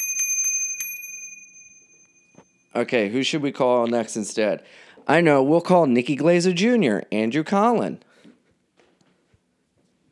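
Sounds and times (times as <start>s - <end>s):
bright metallic bell ringing: 0.0s - 2.7s
speech: 2.8s - 8.1s.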